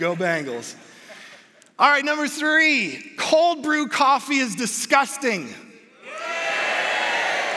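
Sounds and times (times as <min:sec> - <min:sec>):
speech: 0:00.0 - 0:00.9, 0:01.8 - 0:05.6
large audience cheering and booing: 0:06.0 - 0:07.5.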